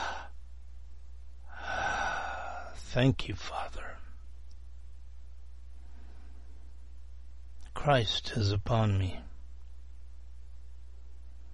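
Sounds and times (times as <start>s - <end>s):
person taking a breath: 0.0s - 0.4s, 1.4s - 2.8s, 5.8s - 6.6s
speech: 2.9s - 3.9s, 7.8s - 9.3s.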